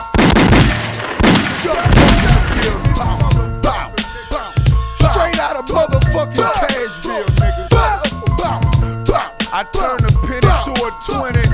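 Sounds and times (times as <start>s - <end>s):
rapid gunfire bursts: 0.0s - 4.9s
dense musical backing: 0.0s - 11.5s
speech: 1.6s - 1.9s.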